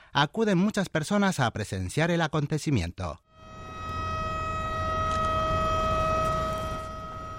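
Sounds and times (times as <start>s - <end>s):
speech: 0.2s - 3.3s
warning siren announcing a bridge lift: 3.3s - 7.3s.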